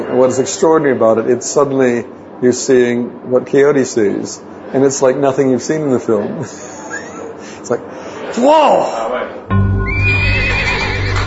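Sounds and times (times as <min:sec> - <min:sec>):
speech: 0:00.1 - 0:06.8, 0:07.6 - 0:09.7
horse whinnying shrilly as its rider reins it in: 0:09.9 - 0:11.2.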